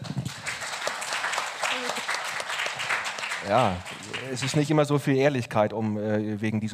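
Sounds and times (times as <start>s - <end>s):
applause from a group: 0.0s - 4.9s
speech: 3.4s - 6.7s.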